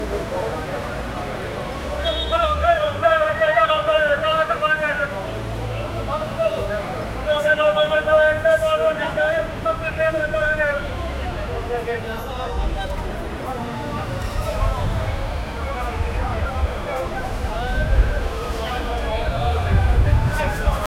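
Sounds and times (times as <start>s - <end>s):
street bustle in Paris: 0.0s - 20.9s.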